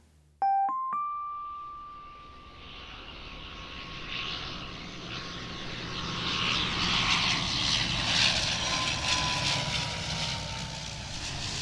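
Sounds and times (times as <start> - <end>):
two-tone chime at an airport: 0.4 - 2.9
airplane jet roar with falling whine passing: 2.0 - 11.6.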